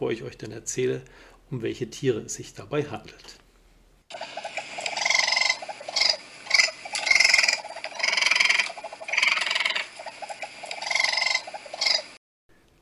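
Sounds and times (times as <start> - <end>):
speech: 0.0 - 3.4
raccoons trilling and chittering: 4.1 - 12.2.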